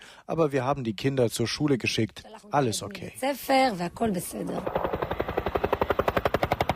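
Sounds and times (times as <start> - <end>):
speech: 0.3 - 4.9
helicopter rotor chop: 4.0 - 6.7.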